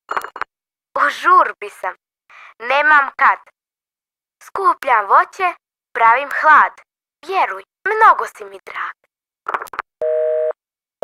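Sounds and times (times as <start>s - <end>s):
speech: 1.1s - 2.0s, 2.6s - 3.6s, 4.4s - 9.8s
telephone busy signal: 10.0s - 11.0s.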